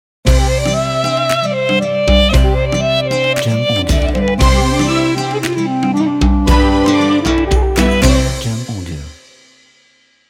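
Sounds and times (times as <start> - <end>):
Ramadan Arabian-style audio logo: 0.3 - 10.0.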